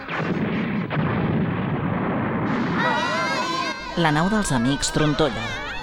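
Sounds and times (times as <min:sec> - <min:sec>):
missile explosion on a mountain peak: 0:00.0 - 0:04.0
speech: 0:04.0 - 0:05.6.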